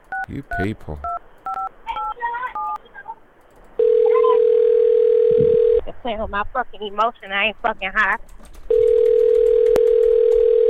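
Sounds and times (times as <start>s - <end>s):
speech: 0.3s - 1.1s, 6.0s - 8.8s
telephone keypad tones: 1.5s - 2.8s, 3.8s - 5.8s, 8.7s - 10.6s
steady telephone dial tone: 3.8s - 5.8s, 8.7s - 10.6s.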